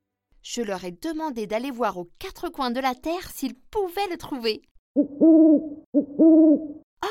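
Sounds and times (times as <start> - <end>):
speech: 0.4 - 7.0
owl hooting: 5.0 - 6.8.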